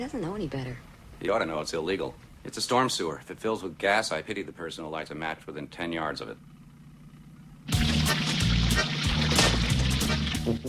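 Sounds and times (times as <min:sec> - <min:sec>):
speech: 0:00.0 - 0:06.5
waste water pouring from a pipe into a storm sewer: 0:07.7 - 0:10.6.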